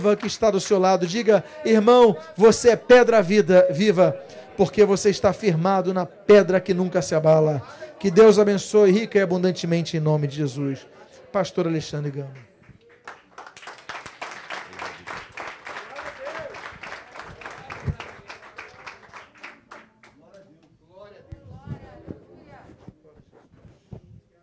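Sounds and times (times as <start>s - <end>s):
audience applauding: 0.0s - 1.8s, 12.3s - 20.2s
speech: 0.0s - 12.5s
crowd voices murmuring and calling out: 0.0s - 12.9s, 14.7s - 20.2s.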